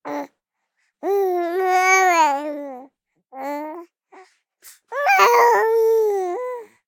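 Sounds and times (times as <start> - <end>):
baby vocalizing: 1.0 - 2.8, 4.9 - 6.7.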